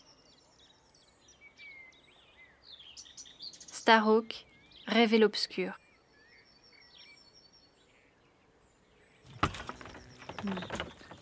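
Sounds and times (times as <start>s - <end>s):
faint birds chirping outdoors: 0.0s - 11.2s
speech: 3.9s - 5.8s
door with a mosquito screen pulled open, rattling and creaking: 9.2s - 11.2s.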